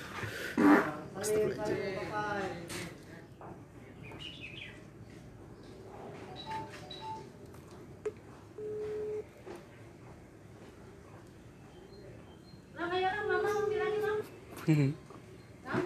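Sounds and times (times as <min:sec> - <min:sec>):
faint chatter: 0:00.0 - 0:15.8
phone ringback tone: 0:08.6 - 0:09.2.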